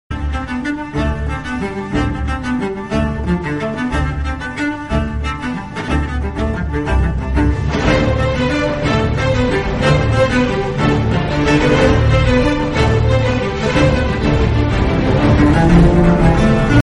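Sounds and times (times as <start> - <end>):
violin: 0.1 - 16.8
trumpet: 7.0 - 16.8.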